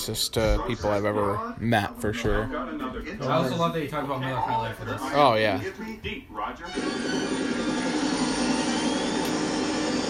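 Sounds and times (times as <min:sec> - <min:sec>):
speech: 0:00.0 - 0:07.7
helicopter engine and rotor noise passing low overhead: 0:06.8 - 0:10.0.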